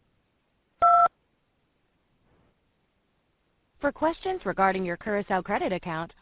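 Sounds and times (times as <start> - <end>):
touch-tone telephone keypad button beep: 0.8 - 1.1
speech: 3.8 - 6.2.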